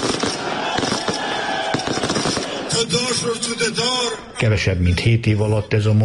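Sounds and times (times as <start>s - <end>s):
fireworks exploding at election victory celebration: 0.0s - 3.1s
busy crowd-like roar: 0.0s - 4.4s
speech: 2.9s - 6.0s.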